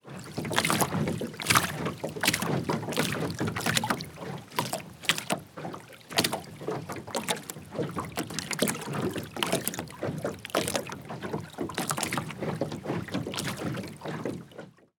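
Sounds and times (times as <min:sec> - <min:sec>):
water lapping against boat: 0:00.0 - 0:14.9.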